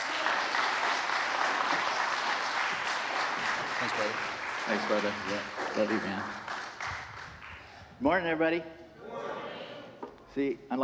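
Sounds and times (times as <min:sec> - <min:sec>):
audience applauding: 0:00.0 - 0:07.8
speech: 0:03.8 - 0:06.4, 0:08.0 - 0:09.3, 0:10.4 - 0:10.8.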